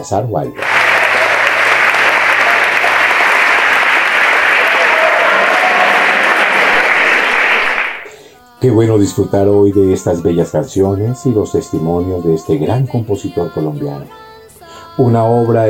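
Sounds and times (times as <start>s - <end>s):
speech: 0.0s - 0.8s, 8.6s - 14.2s, 15.0s - 15.6s
large crowd applauding: 0.6s - 8.2s.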